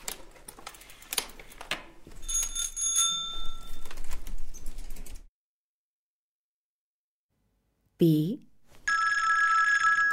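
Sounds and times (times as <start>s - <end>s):
telephone bell ringing: 2.3s - 3.8s, 8.9s - 10.1s
speech: 8.0s - 8.4s.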